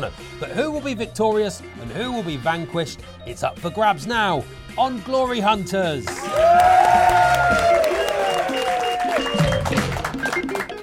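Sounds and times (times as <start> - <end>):
speech: 0.0 - 7.8
crowd clapping and cheering: 6.1 - 10.8
crowd whoops: 6.2 - 9.4.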